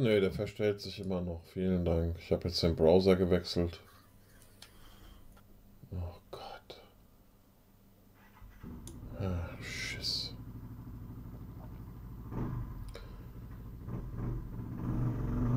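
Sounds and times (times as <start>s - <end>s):
speech: 0.0s - 3.9s, 5.9s - 6.2s
passing motorcycle engine rumble: 8.4s - 15.5s.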